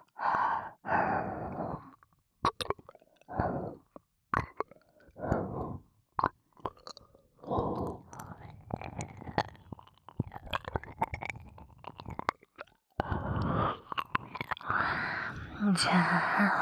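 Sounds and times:
breathy sighs and exhalations: 0:00.0 - 0:02.0, 0:03.2 - 0:04.0, 0:05.1 - 0:05.9, 0:07.4 - 0:09.3, 0:13.0 - 0:16.6
wet ASMR mouth sounds imitating eating the listener's ear: 0:01.5 - 0:16.2
speech: 0:15.7 - 0:16.6.

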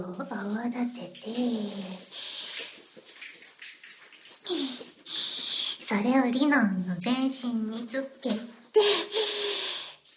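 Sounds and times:
speech: 0:00.0 - 0:02.3, 0:05.9 - 0:09.5
shower running hot water: 0:00.4 - 0:05.8.

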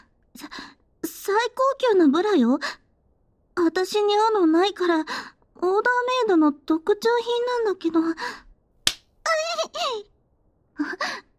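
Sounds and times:
speech: 0:01.3 - 0:02.8, 0:03.7 - 0:08.4
hand slapping bare skin: 0:08.9 - 0:09.1.

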